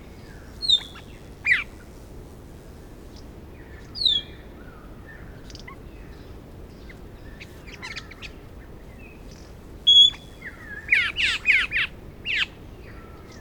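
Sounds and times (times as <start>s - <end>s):
quiet background hiss: 0.0s - 13.3s
Australasian figbird whistled notes: 9.9s - 10.3s.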